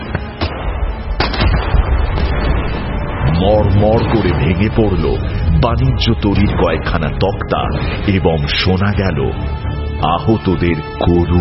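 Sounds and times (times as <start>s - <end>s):
gunfire from a pirate ship: 0.0s - 3.0s
cannon fire from a pirate ship: 0.0s - 4.5s
speech: 3.4s - 11.4s.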